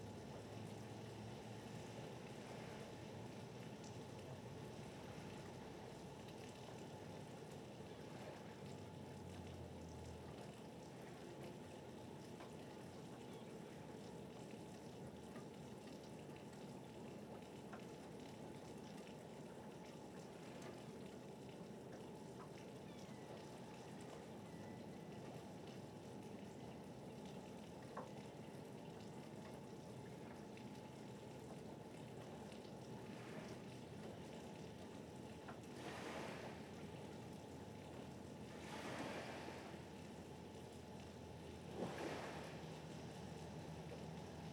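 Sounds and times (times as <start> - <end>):
faint engine-like hum: 0.0 - 44.5
harbor water lapping: 30.0 - 44.5.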